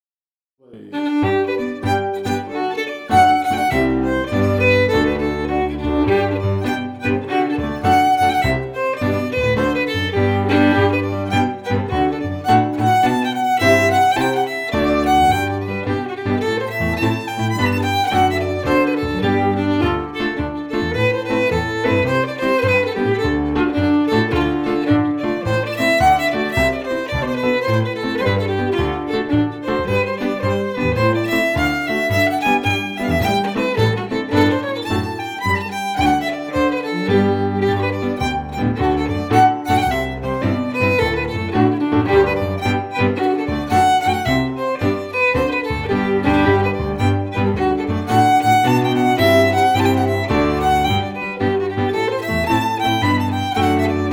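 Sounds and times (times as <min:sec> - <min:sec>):
fiddle playing a jig: 0:00.6 - 0:54.1
cello playing a jig: 0:00.7 - 0:54.1
piano playing a jig: 0:00.9 - 0:54.1.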